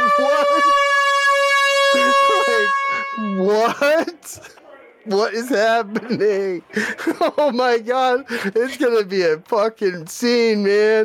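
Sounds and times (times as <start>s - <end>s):
laughter: 0.0s - 1.1s, 1.8s - 4.6s, 5.2s - 8.9s
loud air horn blast: 0.0s - 3.5s
speech: 5.1s - 11.0s.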